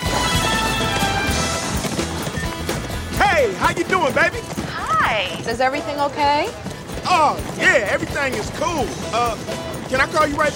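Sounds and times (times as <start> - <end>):
galloping horse hoofbeats ridden by a man alongside a moving train: 0.0 - 10.5
moving train rumbling roar: 0.0 - 10.5
speech: 3.5 - 10.5.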